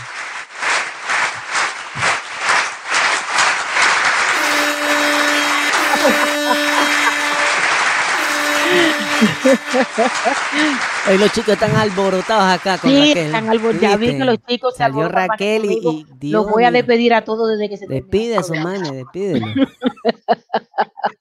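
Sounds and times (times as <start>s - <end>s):
crowd applauding loudly for a dancer: 0.0s - 14.1s
crowd whooping and cheering: 4.3s - 14.2s
laughter: 5.5s - 7.6s, 8.2s - 16.9s, 17.9s - 21.1s
speech: 9.2s - 20.4s.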